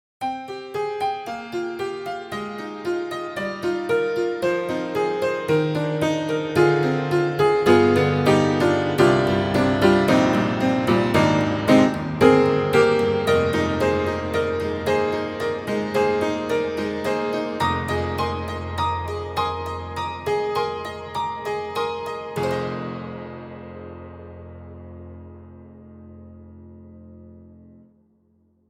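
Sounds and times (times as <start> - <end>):
upright tack piano: 0.2 - 27.8.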